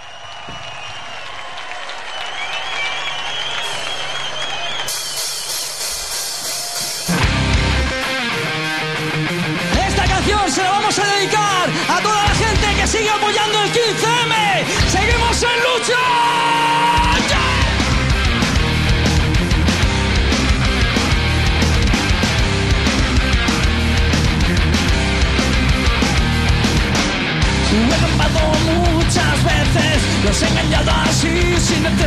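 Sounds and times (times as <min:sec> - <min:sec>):
applause at a live metal concert: 0:00.0 - 0:06.0
crowd cheering and yelling at a live metal concert: 0:00.0 - 0:32.0
speech: 0:30.2 - 0:32.0.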